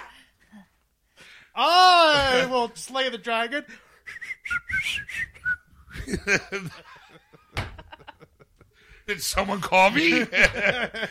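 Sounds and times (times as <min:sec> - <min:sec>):
speech: 0:01.6 - 0:03.9, 0:06.1 - 0:06.9, 0:09.1 - 0:11.0
person whistling short bright notes: 0:04.0 - 0:06.0
snickering laughter: 0:05.9 - 0:08.6.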